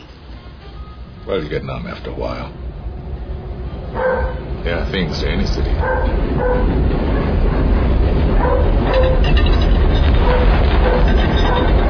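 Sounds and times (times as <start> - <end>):
subway train rumbling past: 0.0 - 11.8
speech: 1.2 - 2.6, 3.9 - 7.3, 8.4 - 11.8
faint metallic squeals and rattles of a subway train: 8.4 - 11.8.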